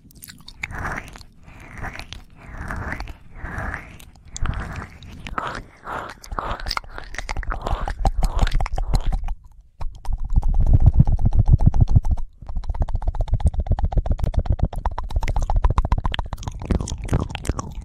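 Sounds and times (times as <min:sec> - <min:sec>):
wet ear licking: 0:00.0 - 0:17.8.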